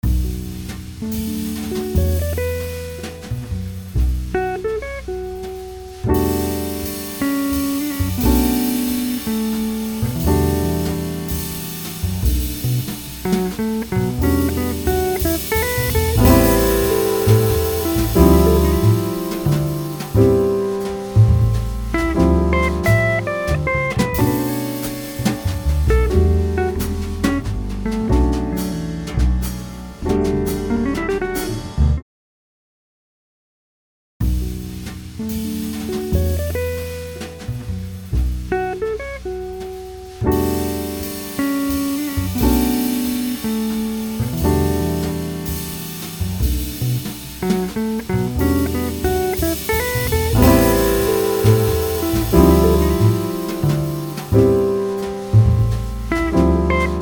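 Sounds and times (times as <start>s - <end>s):
jazz music: 0.0s - 32.0s, 34.2s - 57.0s.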